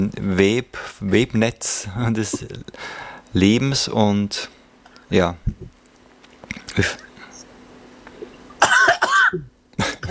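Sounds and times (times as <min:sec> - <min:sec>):
speech: 0:00.0 - 0:05.8, 0:06.8 - 0:07.0, 0:09.3 - 0:09.5
harsh cough: 0:08.6 - 0:10.0.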